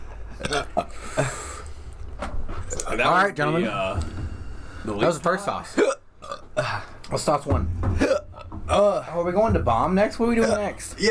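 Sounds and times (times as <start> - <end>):
speech: 3.0 - 4.1, 4.8 - 5.9, 7.1 - 8.0, 8.8 - 11.1
hiccups: 5.8 - 6.8, 8.0 - 8.6.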